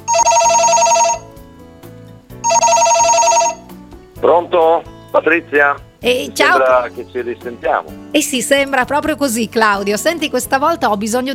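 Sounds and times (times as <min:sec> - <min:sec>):
electronic ringback tone of an outgoing phone call: 0:00.0 - 0:01.6, 0:02.3 - 0:03.8
speech: 0:04.2 - 0:11.3.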